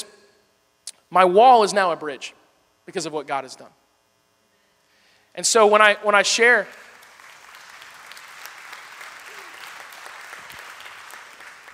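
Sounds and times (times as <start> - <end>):
speech: 1.1 - 3.8, 5.4 - 6.9
crowd applauding: 6.6 - 11.7.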